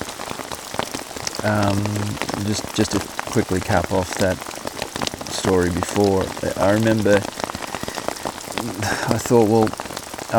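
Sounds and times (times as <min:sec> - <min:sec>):
steady rain pattering on a tarp: 0:00.0 - 0:10.3
speech: 0:01.4 - 0:04.6, 0:05.4 - 0:07.4, 0:08.6 - 0:10.3.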